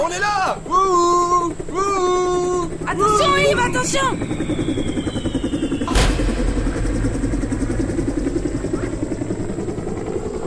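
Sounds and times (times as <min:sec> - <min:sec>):
speech: 0:00.0 - 0:01.0, 0:03.0 - 0:05.4
helicopter rotor chopping: 0:00.0 - 0:10.4
sharp broadband thump: 0:05.8 - 0:08.5.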